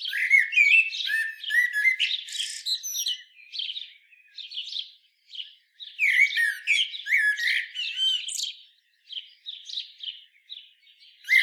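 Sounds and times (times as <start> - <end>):
common blackbird Turdus merula giving squeaky scratchy notes and twittering: 0.0 - 11.4.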